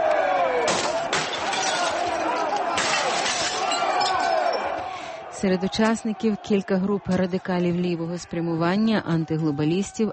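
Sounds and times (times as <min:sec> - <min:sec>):
loud chaotic crowd din: 0:00.0 - 0:10.1
voices shouting: 0:00.0 - 0:10.1
bank windows being smashed: 0:00.7 - 0:04.7
speech: 0:05.4 - 0:10.1.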